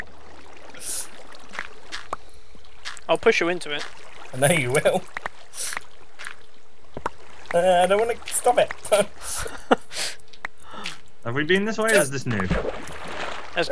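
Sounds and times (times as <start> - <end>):
flowing water: 0.0 - 13.7
speech: 3.1 - 5.2, 7.6 - 9.7, 11.3 - 12.9, 13.6 - 13.7
laughter: 4.3 - 5.8, 7.6 - 11.0, 11.7 - 13.0, 13.6 - 13.7.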